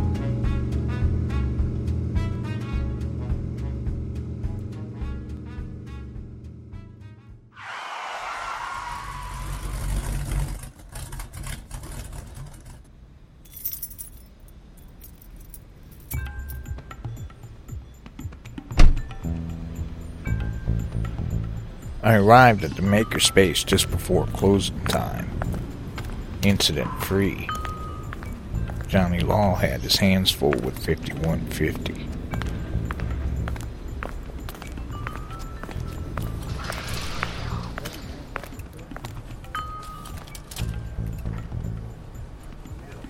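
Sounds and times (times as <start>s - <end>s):
big Mopar car engine rumble: 0.0s - 43.0s
rushing whoosh: 7.6s - 10.7s, 36.4s - 38.8s
speech: 22.1s - 25.4s, 26.4s - 27.6s, 28.9s - 32.1s.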